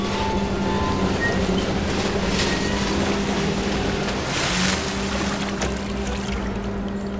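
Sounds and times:
crane motor hum lifting a heavy beam out of water: 0.0 - 7.1
continuous rushing water: 1.7 - 7.1
gush of water draining from a lifted beam: 2.6 - 7.1.

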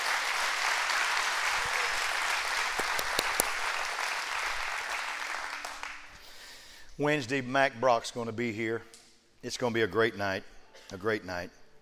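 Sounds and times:
large crowd applauding: 0.0 - 6.1
speech: 7.0 - 11.6.

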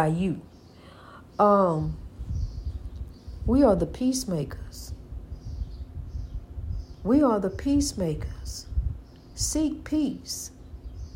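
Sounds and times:
speech: 0.0 - 0.5, 1.4 - 2.0, 3.4 - 5.0, 7.0 - 8.7, 9.4 - 10.6
small birds chirping indoors: 0.0 - 11.1
steady low indoor rumble: 0.0 - 11.1.

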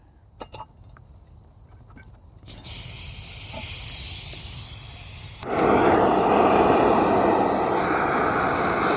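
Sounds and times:
camp stove burner hissing under a pot of water: 2.4 - 8.9.

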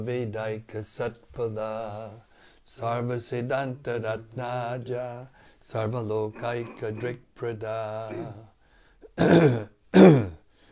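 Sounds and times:
speech: 0.0 - 8.5, 9.2 - 10.3
throat-clearing coughs: 8.1 - 8.4, 9.2 - 10.4.

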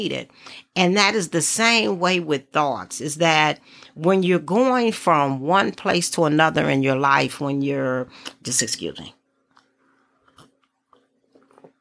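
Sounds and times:
speech: 0.0 - 9.2
person sipping hot coffee: 9.4 - 11.8
swallowing coffee: 9.4 - 11.8.

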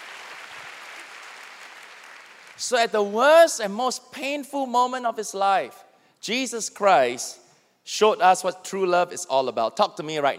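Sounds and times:
large church audience applause: 0.0 - 2.6
speech: 2.6 - 10.3.

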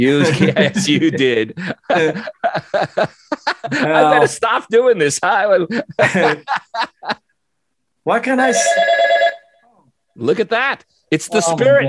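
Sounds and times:
speech: 0.0 - 7.2, 8.0 - 9.4, 10.2 - 11.8
laughter: 0.1 - 4.4, 5.6 - 7.2
telephone ringing: 8.5 - 9.6.

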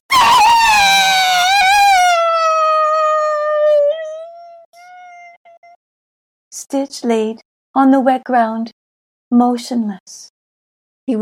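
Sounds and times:
person giving a long terrified scream: 0.1 - 4.4
speech: 6.7 - 10.3.

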